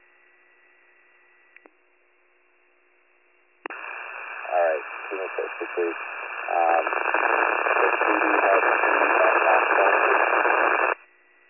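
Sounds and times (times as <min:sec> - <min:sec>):
faint residual hiss: 0:03.7 - 0:11.0
radio static burst: 0:03.7 - 0:11.0
speech: 0:05.1 - 0:08.4.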